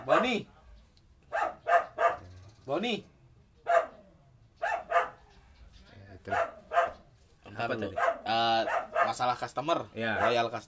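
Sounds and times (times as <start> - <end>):
wolf barking at a zoo: 0.0 - 0.4, 1.3 - 2.4, 3.6 - 4.0, 4.6 - 5.2, 6.2 - 7.1, 7.8 - 9.4, 10.1 - 10.6
speech: 0.2 - 0.5, 2.7 - 3.1, 6.3 - 6.6, 7.6 - 10.6.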